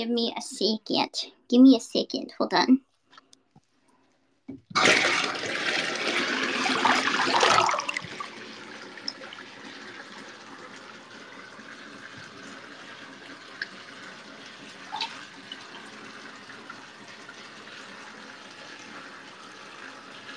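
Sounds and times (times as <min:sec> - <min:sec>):
speech: 0:00.0 - 0:02.9, 0:04.5 - 0:05.4
running faucet water gushing: 0:04.7 - 0:20.3.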